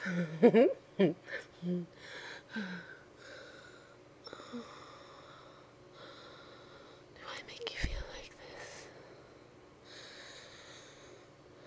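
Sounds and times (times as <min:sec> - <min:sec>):
speech: 0:00.0 - 0:02.9
heavy quickened breathing: 0:01.3 - 0:07.1, 0:08.8 - 0:11.6.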